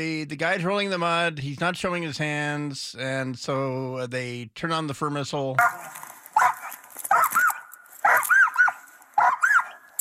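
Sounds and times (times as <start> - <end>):
speech: 0.0 - 6.1
small dog barking high-pitched yappy barks: 5.6 - 9.9.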